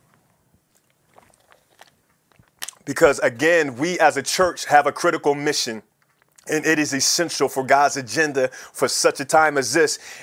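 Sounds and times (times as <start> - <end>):
person sipping a drink: 0.7 - 2.8
slurp and swallow: 0.7 - 2.8
wet mouth clicks: 0.7 - 2.9, 6.0 - 6.5
speech: 2.9 - 5.9, 6.5 - 10.2.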